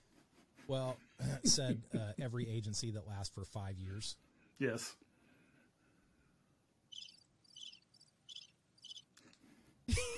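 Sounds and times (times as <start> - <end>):
speech: 0.7 - 5.1
bright cricket chirps: 6.9 - 9.1.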